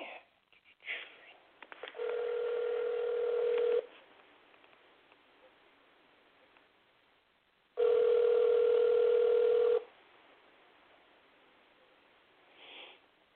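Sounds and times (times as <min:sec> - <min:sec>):
phone line tone: 0:02.0 - 0:03.9, 0:07.8 - 0:09.9.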